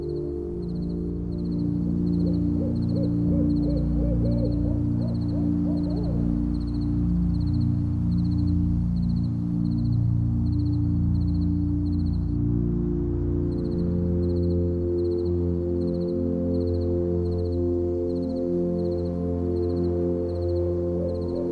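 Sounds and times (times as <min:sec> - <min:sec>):
crickets chirping: 0:00.0 - 0:21.5
owl hooting at night: 0:02.0 - 0:06.9, 0:20.3 - 0:21.5.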